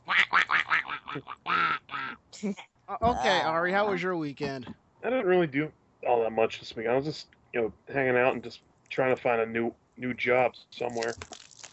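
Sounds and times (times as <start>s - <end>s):
duck quacking: 0.0s - 2.2s
speech: 1.2s - 1.4s, 2.4s - 11.4s.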